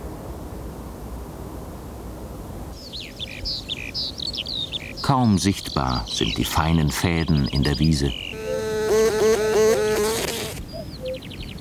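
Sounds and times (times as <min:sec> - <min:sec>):
speech: 0:05.1 - 0:08.2
hoverfly buzzing caught in spider web: 0:08.1 - 0:10.7.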